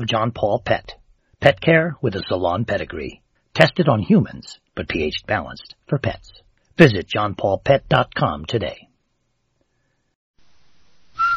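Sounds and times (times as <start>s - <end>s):
speech: 0.0s - 8.9s
faint hiss: 0.0s - 11.3s
whistled radio jingle note: 11.1s - 11.3s.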